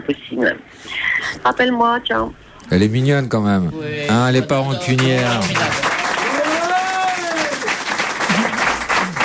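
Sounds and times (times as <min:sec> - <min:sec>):
speech: 0:00.1 - 0:05.9
studio audience applauding: 0:04.4 - 0:09.2.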